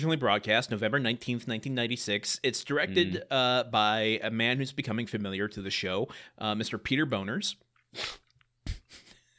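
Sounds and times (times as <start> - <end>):
speech: 0.0 - 8.2
person sneezing: 7.9 - 9.1.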